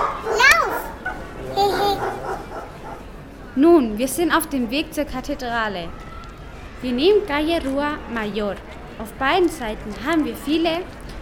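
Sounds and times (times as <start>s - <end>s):
dog yelping and whining bark on a busy town street: 0.0s - 3.0s
speech: 3.6s - 6.0s, 6.8s - 11.0s.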